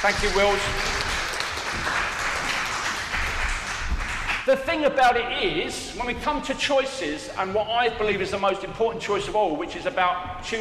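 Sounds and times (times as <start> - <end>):
speech: 0.0 - 0.9, 1.7 - 2.3, 4.4 - 10.6
audience applauding: 0.0 - 5.1.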